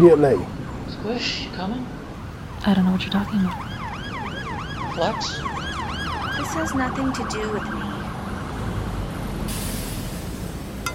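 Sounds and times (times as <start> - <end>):
speech: 0.0 - 2.0, 2.6 - 3.7, 5.0 - 5.5, 6.4 - 7.8
busy street traffic at Market and 5th rumbling: 0.0 - 10.9
loud hiss of air brakes: 9.4 - 10.9.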